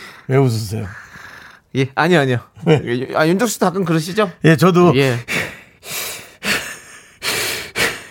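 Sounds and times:
heavy rasping breathing: 0.0 - 1.7, 5.0 - 8.0
speech: 0.3 - 1.0, 1.7 - 6.0.

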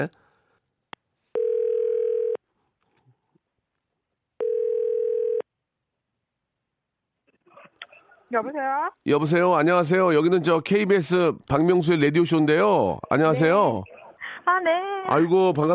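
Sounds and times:
speech: 0.0 - 0.2, 8.3 - 15.7
outgoing phone call ringback tone: 1.3 - 2.4, 4.4 - 5.4.

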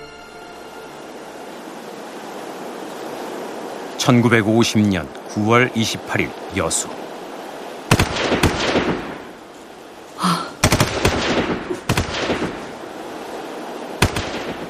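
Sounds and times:
steady outdoor noise: 0.0 - 14.6
speech: 4.0 - 7.1
gunshots from an orchard: 7.9 - 9.2, 10.6 - 12.6, 14.0 - 14.6.

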